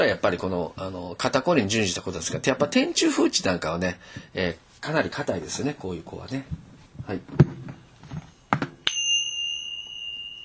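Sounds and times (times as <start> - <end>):
speech: 0.1 - 7.7
bell struck once, bright ringing tone: 8.8 - 10.4.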